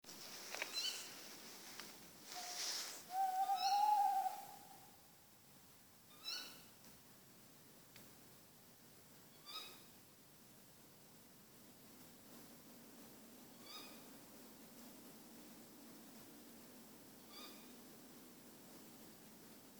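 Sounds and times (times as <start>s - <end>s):
tawny owl Strix aluco calling: 0.7s - 1.1s, 2.3s - 5.0s, 6.1s - 6.6s, 17.3s - 17.7s.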